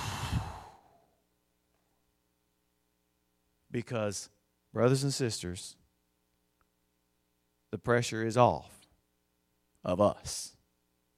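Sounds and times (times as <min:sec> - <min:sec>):
deep breath out during a church service: 0:00.0 - 0:01.2
speech: 0:03.7 - 0:05.8, 0:07.7 - 0:08.8, 0:09.8 - 0:10.6.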